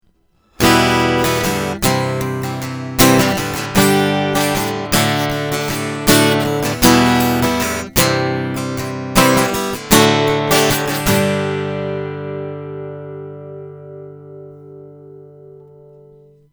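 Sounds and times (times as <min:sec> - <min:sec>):
Harley Benton CLD-15CE Flame Koa acoustic guitar: 0:00.1 - 0:16.5.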